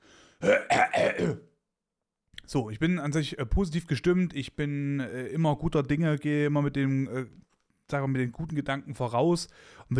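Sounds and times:
speech: 0:00.4 - 0:01.4, 0:02.5 - 0:09.9
person clearing throat: 0:00.4 - 0:01.5.

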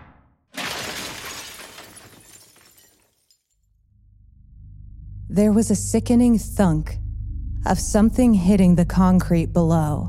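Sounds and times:
glass window shattering: 0:00.5 - 0:03.4
tumbling shards of breaking glass: 0:00.5 - 0:03.5
speech: 0:05.3 - 0:07.0, 0:07.6 - 0:10.0.

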